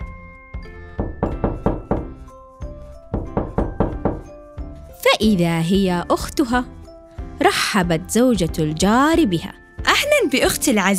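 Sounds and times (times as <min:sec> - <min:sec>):
firm knocks on a wooden door: 0:01.0 - 0:02.2, 0:03.1 - 0:04.3
speech: 0:05.2 - 0:06.8, 0:07.4 - 0:09.6, 0:10.2 - 0:10.9.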